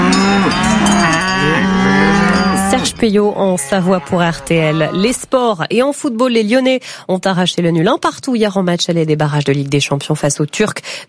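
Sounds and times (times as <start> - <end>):
cows mooing: 0.0 - 5.3
speech: 3.0 - 11.0.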